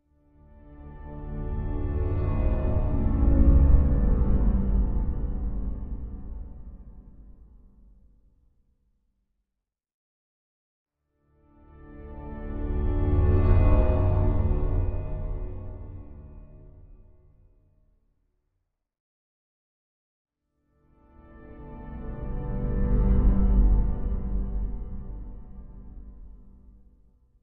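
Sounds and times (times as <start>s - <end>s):
eerie soft orchestral music: 0.3s - 7.8s, 11.5s - 17.2s, 20.9s - 26.8s.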